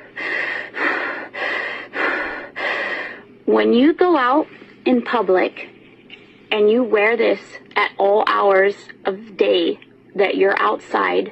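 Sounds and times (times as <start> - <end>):
woman breathing heavily into a face mask: 0.0 - 3.2
speech: 3.5 - 5.8, 6.5 - 11.3.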